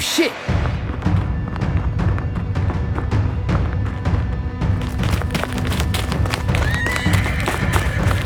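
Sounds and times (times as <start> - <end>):
horse hooves clip-clopping: 0.1 - 8.2
horse-drawn carriage wheels rumbling: 0.9 - 8.2
horse whinnying: 6.1 - 8.2.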